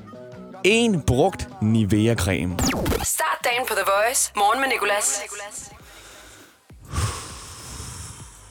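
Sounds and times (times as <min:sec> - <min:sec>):
speech: 0:00.6 - 0:05.8
loud rasping breathing: 0:05.8 - 0:08.4.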